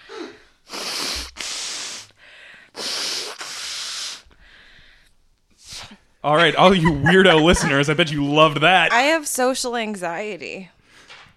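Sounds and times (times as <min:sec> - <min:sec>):
person blowing nose into a microphone: 0:00.0 - 0:04.4, 0:05.6 - 0:06.0
sniffs: 0:00.0 - 0:06.0
speech: 0:06.2 - 0:10.8
laughter: 0:06.4 - 0:09.0.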